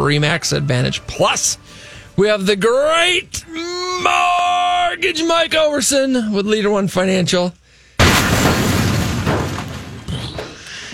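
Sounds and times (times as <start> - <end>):
speech: 0.0 - 4.4, 5.0 - 7.6
explosion with loud boom and deep rumbling blast: 8.0 - 10.1.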